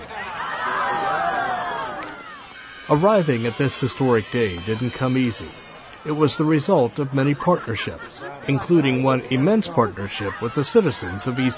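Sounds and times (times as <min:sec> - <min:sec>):
crowd cheering outdoors in a valley in the eastern Kentucky hills: 0:00.0 - 0:11.5
laughter: 0:02.9 - 0:11.5
speech: 0:02.9 - 0:11.5.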